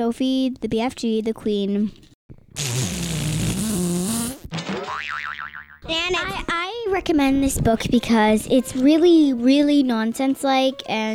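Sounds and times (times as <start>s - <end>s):
speech: 0.0s - 3.1s, 5.9s - 11.1s
voice imitating farting with a buzzy raspberry: 2.5s - 5.3s.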